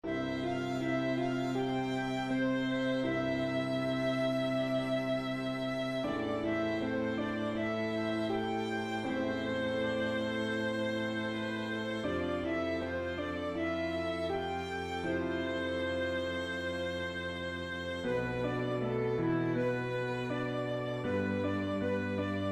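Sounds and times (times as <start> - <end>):
classical backing track with solo: 0.0 - 22.5.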